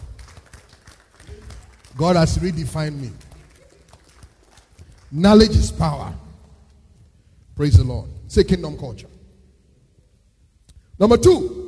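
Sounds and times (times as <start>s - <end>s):
audience clapping hands: 0.0s - 6.8s
speech: 2.0s - 3.2s, 5.1s - 6.2s, 7.6s - 9.1s, 11.0s - 11.6s.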